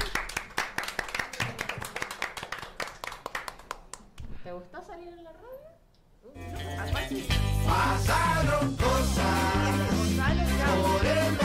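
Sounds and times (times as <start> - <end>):
small group clapping for guests: 0.0 - 4.3, 9.0 - 11.4
speech: 4.5 - 11.4.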